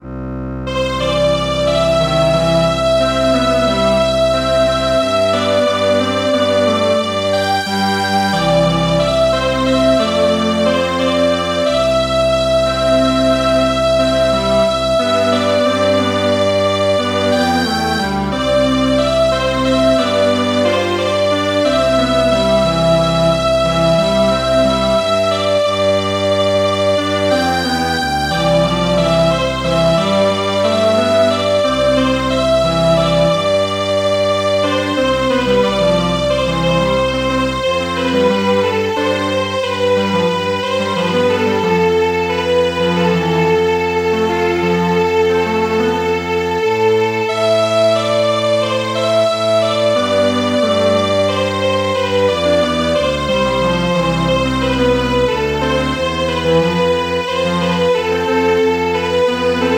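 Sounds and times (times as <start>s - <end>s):
traditional Yemen song played by MIDI string quartet: 0.0s - 59.7s.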